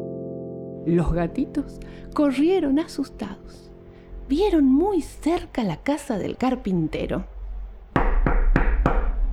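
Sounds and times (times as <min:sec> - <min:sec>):
speech: 0:00.9 - 0:03.7, 0:04.3 - 0:07.3
knocking on the wooden door of a carpenter's house: 0:07.9 - 0:09.2.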